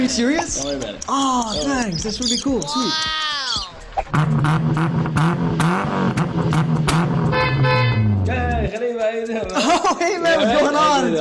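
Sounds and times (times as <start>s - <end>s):
car engine humming: 0.0s - 8.8s
speech: 0.0s - 11.1s
laughter: 1.9s - 4.3s, 9.3s - 11.1s
car horn toots: 6.9s - 8.3s.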